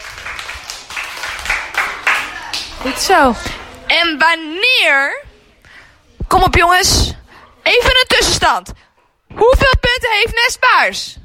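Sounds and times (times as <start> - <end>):
applause for a correct answer in a children's quiz game: 0.0 - 2.9
speech: 2.8 - 5.2, 6.3 - 11.2.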